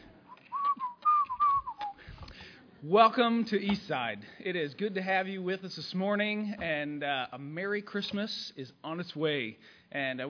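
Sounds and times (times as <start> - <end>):
person whistling a tune: 0.3 - 2.1
speech: 2.8 - 10.2.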